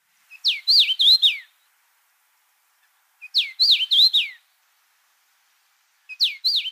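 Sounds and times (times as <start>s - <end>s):
common rosefinch singing: 0.3s - 1.6s, 3.2s - 4.4s, 6.1s - 6.7s.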